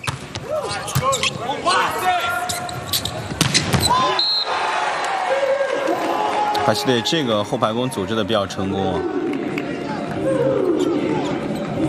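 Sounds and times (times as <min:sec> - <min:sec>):
crowd noise: 0:00.0 - 0:11.8
volleyball bouncing on the court before a serve: 0:02.7 - 0:04.0
commentator speaking: 0:06.6 - 0:09.1
speech: 0:06.6 - 0:09.3.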